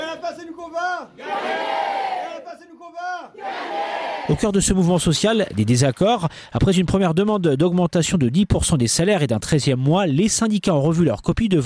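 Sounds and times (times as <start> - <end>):
speech: 0.4 - 1.8, 2.6 - 11.6
large crowd chanting a protest slogan in unison during a workers' strike: 1.2 - 2.5, 3.3 - 4.4.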